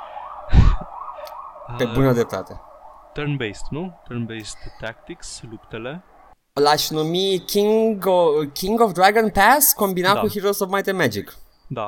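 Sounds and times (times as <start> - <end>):
police siren wailing outside: 0.0 - 6.4
low rumble of passing traffic: 0.0 - 9.2
speech: 1.7 - 11.8.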